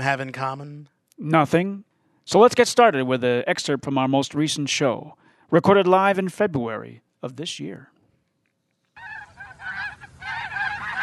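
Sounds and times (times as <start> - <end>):
speech: 0.0 - 7.9
goose honking: 9.0 - 11.0.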